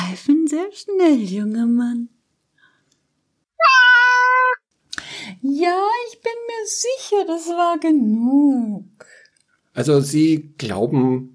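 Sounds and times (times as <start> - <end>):
speech: 0.6 - 2.2, 5.2 - 9.2, 9.8 - 11.3
cat meowing: 3.6 - 4.6.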